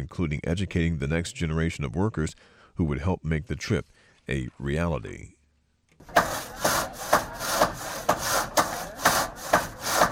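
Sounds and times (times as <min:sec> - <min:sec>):
speech: 0:00.0 - 0:05.4
handsaw cutting through wood: 0:06.0 - 0:10.1.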